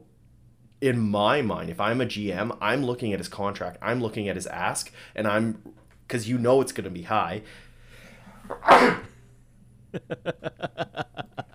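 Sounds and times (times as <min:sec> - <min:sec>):
speech: 0:00.8 - 0:07.6, 0:08.4 - 0:09.1, 0:09.9 - 0:11.5
person sneezing: 0:08.5 - 0:09.1
laughter: 0:10.0 - 0:11.5.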